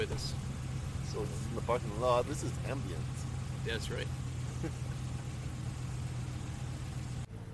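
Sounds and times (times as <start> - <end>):
truck engine idling in parking lot: 0.0 - 7.5
speech: 1.2 - 4.9.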